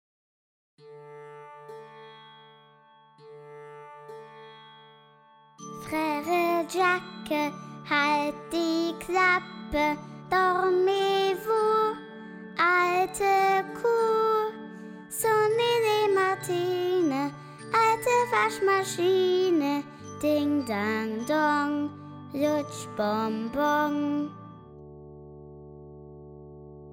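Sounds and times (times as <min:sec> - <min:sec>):
person singing a nursery rhyme: 0:05.8 - 0:24.5.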